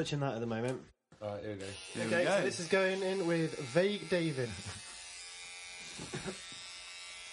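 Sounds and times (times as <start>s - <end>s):
speech: 0.0s - 4.9s, 6.0s - 6.6s
electric beard trimmer buzzing while trimming a beard: 1.6s - 7.3s.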